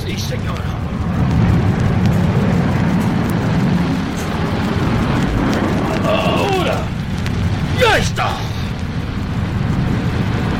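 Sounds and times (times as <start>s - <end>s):
small jet engines powering up to full throttle in a hangar: 0.0s - 10.5s
speech: 0.1s - 1.4s
voices shouting: 5.8s - 7.0s, 7.7s - 8.6s.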